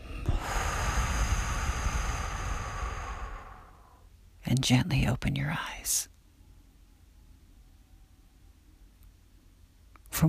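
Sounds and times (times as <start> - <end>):
deep breath exhaled through the mouth: 0.0 - 4.1
speech: 4.5 - 6.1.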